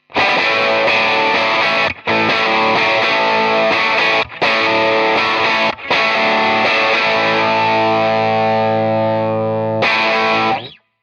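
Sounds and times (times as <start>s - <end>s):
Tele guitar playing straight rock: 0.0s - 10.8s.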